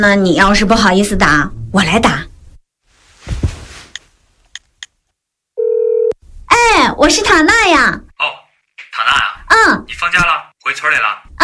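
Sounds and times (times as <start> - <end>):
speech: 0.0 - 2.3, 6.8 - 8.4, 9.0 - 11.4
rustle of handling a phone: 2.9 - 4.2
electronic telephone ringing tone on the line: 5.6 - 6.2.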